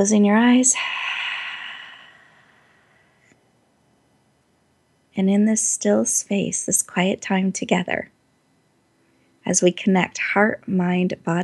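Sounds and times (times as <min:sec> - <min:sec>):
speech: 0:00.0 - 0:01.1, 0:05.2 - 0:08.2, 0:09.5 - 0:11.4
deep breath exhale during a guided relaxation exercise: 0:00.7 - 0:03.1.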